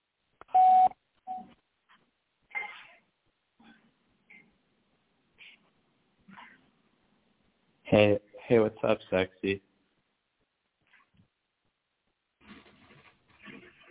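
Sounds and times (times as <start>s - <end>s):
phone keypad dialing beeps while adding a caller: 0.5s - 1.4s
speech: 7.9s - 9.7s.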